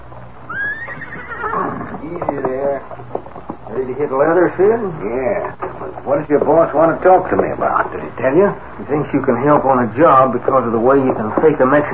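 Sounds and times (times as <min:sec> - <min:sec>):
horse hooves clopping: 0:00.0 - 0:11.9
horse whinnying: 0:00.4 - 0:02.2
speech: 0:02.1 - 0:02.4, 0:04.0 - 0:11.9.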